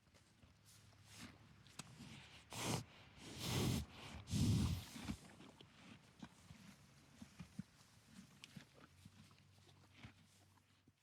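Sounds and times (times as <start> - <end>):
big mammal eating: 4.3 - 11.0.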